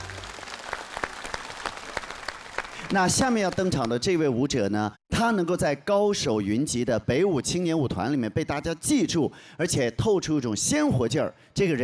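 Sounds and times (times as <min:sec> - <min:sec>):
audience applause after a dance performance: 0:00.0 - 0:03.9
speech: 0:02.9 - 0:11.8.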